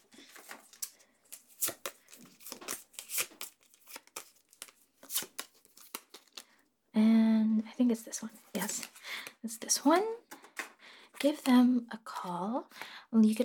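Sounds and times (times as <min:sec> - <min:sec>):
business card paper crinkling and rustling as it is handled: 0:00.0 - 0:06.5, 0:08.5 - 0:09.0
speech: 0:07.8 - 0:10.2, 0:11.2 - 0:13.4.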